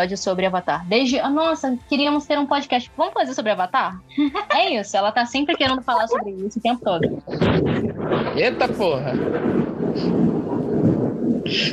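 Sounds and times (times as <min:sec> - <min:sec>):
speech: 0:00.0 - 0:10.5, 0:11.4 - 0:11.7
laughter: 0:04.2 - 0:04.8, 0:05.5 - 0:06.3
thunder rumbling: 0:05.5 - 0:11.7
faint rain-like hiss: 0:07.4 - 0:11.7.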